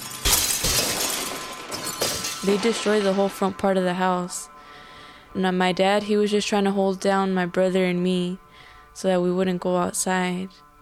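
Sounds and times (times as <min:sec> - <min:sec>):
tinkling glass shards: 0:00.0 - 0:03.6
window glass shattering: 0:00.0 - 0:03.8
speech: 0:02.4 - 0:04.6, 0:05.3 - 0:08.4, 0:09.0 - 0:10.6.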